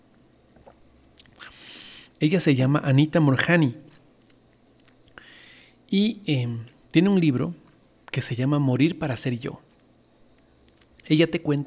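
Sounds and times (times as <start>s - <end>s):
person sipping tea: 0.6s - 2.2s
speech: 2.2s - 3.8s, 5.9s - 7.6s, 8.2s - 9.7s, 11.1s - 11.6s.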